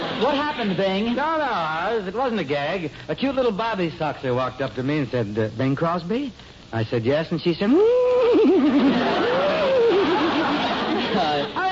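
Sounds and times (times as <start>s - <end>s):
speech: 0.2s - 9.4s
man laughing with voice imitation of a horse whinny: 8.2s - 10.6s.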